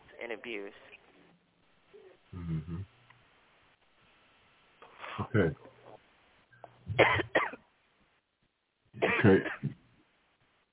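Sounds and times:
speech: 0:00.3 - 0:01.0, 0:02.3 - 0:02.9, 0:05.2 - 0:05.7, 0:07.0 - 0:07.5, 0:09.2 - 0:09.8
coughing: 0:06.6 - 0:07.6, 0:09.0 - 0:09.9.

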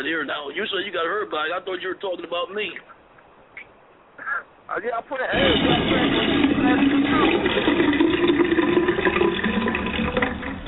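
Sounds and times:
speech: 0:00.0 - 0:03.0, 0:04.3 - 0:08.0
toilet flushing with swirling water: 0:05.3 - 0:10.6.

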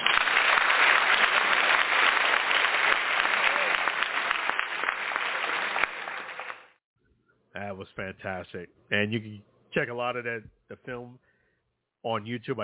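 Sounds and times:
crowd applauding: 0:00.0 - 0:06.8
speech: 0:07.8 - 0:11.3, 0:12.0 - 0:12.6.

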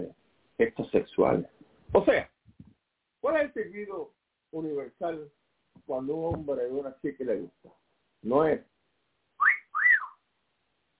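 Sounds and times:
speech: 0:00.0 - 0:02.3, 0:03.5 - 0:08.7
person whistling at a woman: 0:09.4 - 0:10.2.

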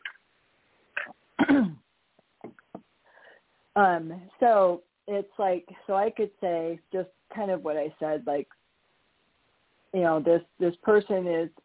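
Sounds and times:
person clearing throat: 0:01.0 - 0:01.8
person hacking coughs: 0:01.0 - 0:01.8
faint breathy noises: 0:03.0 - 0:03.7
speech: 0:03.8 - 0:08.6, 0:09.9 - 0:11.6.

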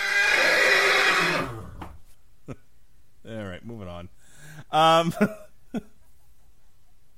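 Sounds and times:
horse whinnying: 0:00.0 - 0:02.0
speech: 0:04.7 - 0:05.9.

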